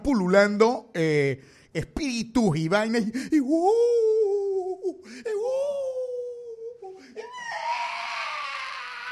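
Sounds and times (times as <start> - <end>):
speech: 0.0 - 4.2, 4.9 - 5.7
voice imitating eerie guttural screams and wails: 7.2 - 9.1.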